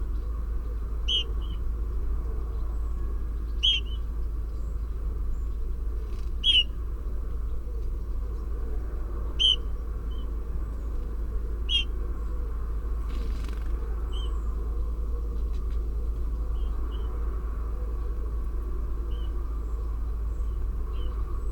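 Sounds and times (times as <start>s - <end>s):
steady low rumble of traffic: 0.0s - 21.4s
Eurasian bullfinch Pyrrhula pyrrhula soft short piping whistles: 9.4s - 9.6s.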